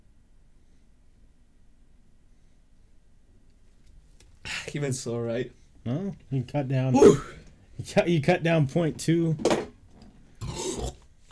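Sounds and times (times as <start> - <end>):
speech: 4.4 - 9.6
low rasping beer burp: 10.4 - 11.1.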